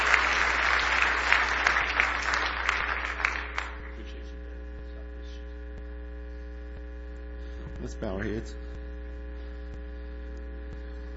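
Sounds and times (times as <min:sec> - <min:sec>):
large audience clapping in praise: 0:00.0 - 0:04.2
speech: 0:08.0 - 0:08.8.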